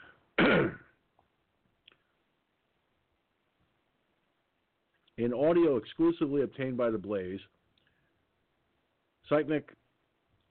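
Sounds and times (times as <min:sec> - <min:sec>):
man clearing throat: 0:00.4 - 0:01.0
speech: 0:00.5 - 0:00.8, 0:05.2 - 0:07.6, 0:09.3 - 0:09.8.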